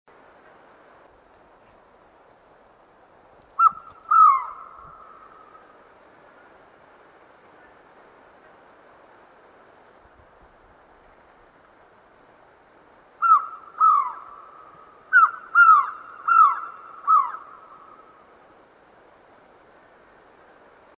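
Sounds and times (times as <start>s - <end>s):
Hispaniolan trogon calling: 3.6s - 5.6s, 13.2s - 18.0s.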